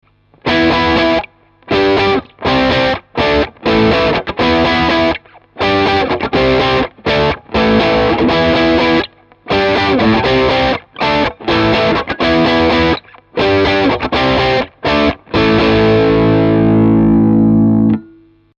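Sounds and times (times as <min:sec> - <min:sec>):
electric guitar played hard on middle pickup: 0:00.4 - 0:18.2.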